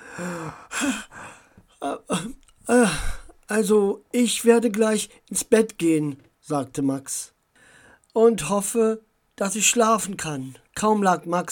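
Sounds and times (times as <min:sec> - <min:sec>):
person acting out a drawn-out yawn: 0:00.0 - 0:01.2, 0:01.8 - 0:03.3
speech: 0:03.6 - 0:07.3, 0:08.2 - 0:11.4.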